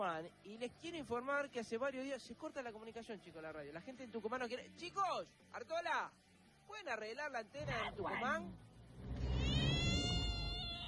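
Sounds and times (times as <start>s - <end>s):
speech: 0.0s - 8.7s
cat meowing: 9.2s - 10.8s.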